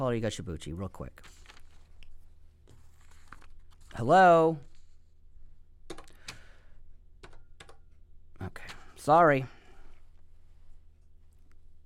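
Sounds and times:
speech: 0.0s - 1.5s, 3.9s - 4.7s, 8.4s - 9.6s
paper crinkling and rustling: 1.1s - 5.1s.

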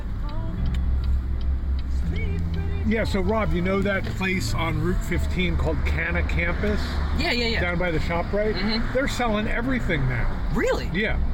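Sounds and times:
faint ticking: 0.0s - 5.6s
car driving on a road recorded from inside: 0.0s - 11.3s
speech: 2.9s - 11.3s.

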